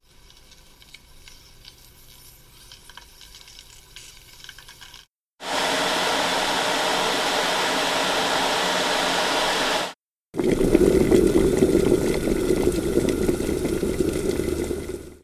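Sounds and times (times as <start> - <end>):
electric kettle rushing: 5.4 - 15.2.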